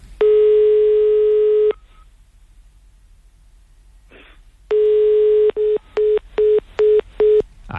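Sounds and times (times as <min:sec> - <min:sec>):
telephone ringback tone on a call: 0:00.2 - 0:01.8, 0:04.7 - 0:07.4.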